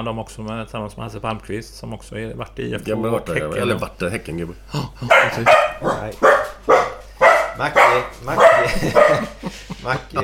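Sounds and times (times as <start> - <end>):
speech: 0.0 - 6.9, 7.6 - 10.2
dog barking: 5.1 - 9.4
laughter: 8.3 - 10.2.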